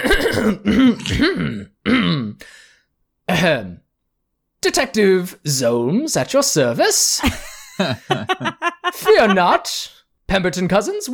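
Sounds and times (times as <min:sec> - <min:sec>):
man clearing his throat theatrically: 0:00.0 - 0:02.4
speech: 0:00.1 - 0:01.8, 0:03.4 - 0:03.8, 0:04.6 - 0:11.1
laughter: 0:07.2 - 0:09.9.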